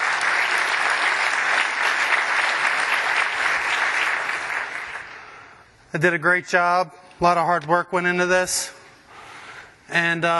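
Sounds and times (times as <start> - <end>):
audience applause at a conference session in Amsterdam: 0.0 - 5.5
speech: 5.9 - 8.8, 9.9 - 10.3.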